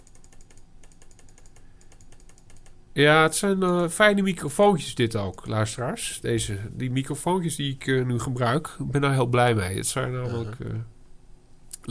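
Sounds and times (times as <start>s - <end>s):
computer mouse clicking: 0.0s - 2.8s
speech: 3.0s - 10.9s.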